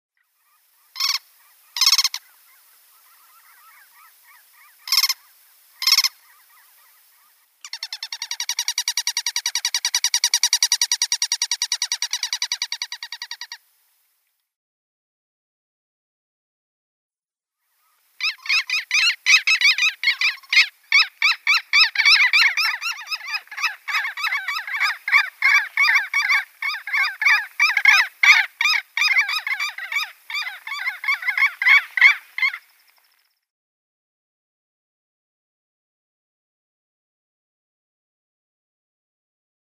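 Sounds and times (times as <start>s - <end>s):
Black-headed Lapwing pair calling: 0.3s - 13.6s, 17.7s - 33.3s.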